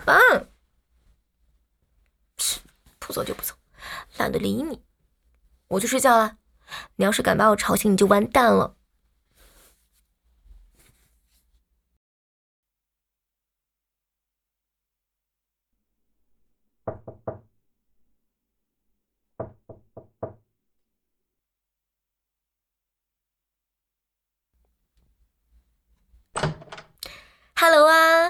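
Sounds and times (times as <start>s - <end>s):
speech: 0.0s - 0.5s, 3.1s - 3.6s, 4.2s - 4.9s, 5.7s - 8.8s
knocking on a door: 16.9s - 17.5s, 19.4s - 20.4s, 26.4s - 26.9s.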